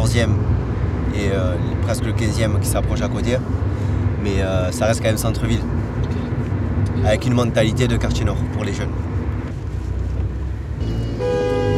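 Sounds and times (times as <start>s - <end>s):
continuous rumble of city-centre road traffic: 0.0s - 11.7s
speech: 0.1s - 5.8s, 7.0s - 9.2s
car horn honking impatiently in city-centre traffic at a traffic light: 10.8s - 11.7s.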